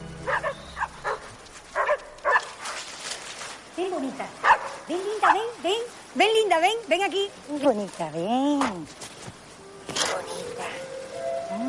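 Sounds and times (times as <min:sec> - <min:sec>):
dogs barking and yipping while being fed: 0:00.2 - 0:02.8, 0:04.4 - 0:05.4
speech: 0:03.9 - 0:09.0.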